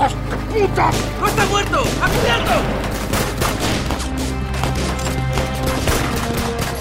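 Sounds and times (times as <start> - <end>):
speech: 0.1 - 3.0
rapid gunfire exchanged between several weapons: 1.8 - 6.7.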